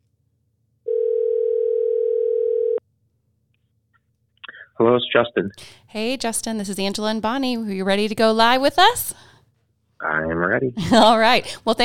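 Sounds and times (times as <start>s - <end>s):
telephone dial tone while a call is being placed: 0.9s - 2.8s
speech: 4.8s - 9.3s, 10.0s - 11.8s.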